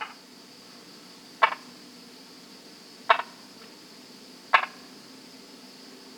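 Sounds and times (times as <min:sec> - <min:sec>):
Brauer's tree frog Polypedates braueri clicking calls: 0:00.0 - 0:00.2, 0:01.4 - 0:01.7, 0:03.1 - 0:03.4, 0:04.5 - 0:04.9.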